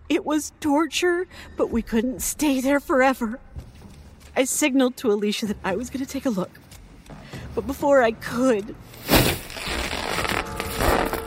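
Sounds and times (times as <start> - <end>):
speech: 0.2 - 3.6, 4.4 - 6.7, 7.6 - 9.4
scythe blade piercing and slicing through a curtain: 9.0 - 11.2.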